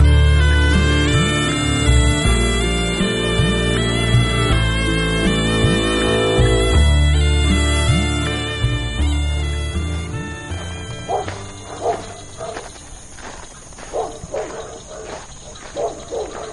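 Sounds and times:
sustained low tones: 0.0s - 12.6s
dog howling in short repeated wailing cries: 11.0s - 12.8s, 13.8s - 16.5s.

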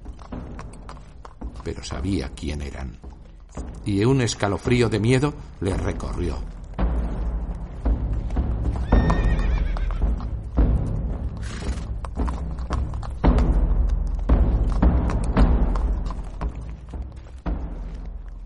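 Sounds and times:
hooves thudding and clopping: 0.0s - 18.4s
speech: 1.6s - 3.1s, 3.8s - 6.6s
horse carrying a rider whinnying: 8.7s - 10.4s, 11.4s - 12.0s.

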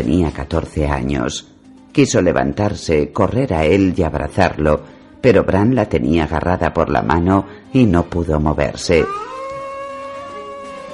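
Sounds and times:
speech: 0.0s - 9.3s
wolf howling outside a tower at night: 9.0s - 10.9s.

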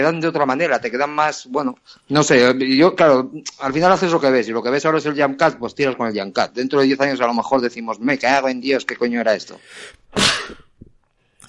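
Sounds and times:
speech: 0.0s - 10.6s
person sneezing: 9.7s - 10.8s.

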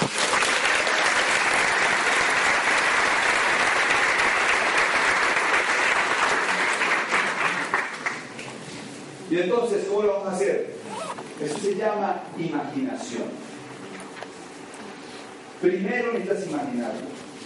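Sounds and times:
large audience applause: 0.0s - 8.3s
speech: 9.4s - 10.8s, 11.4s - 13.4s, 15.6s - 17.1s.

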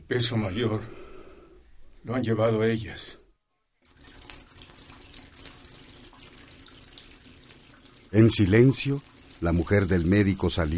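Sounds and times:
speech: 0.1s - 1.0s, 2.0s - 3.2s, 8.1s - 10.7s
small sharper water drips: 3.8s - 10.7s
water from a tap filling a bucket: 3.8s - 10.7s.

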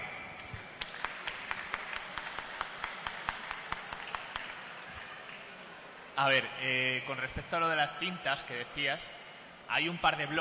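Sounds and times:
small audience clapping rhythmically: 0.4s - 5.4s
speech: 6.2s - 10.3s.

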